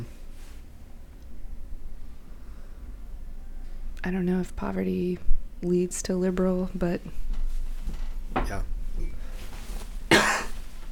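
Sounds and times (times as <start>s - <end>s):
faint room noise: 0.0s - 10.9s
speech: 4.0s - 7.2s
sharp cough: 10.1s - 10.6s.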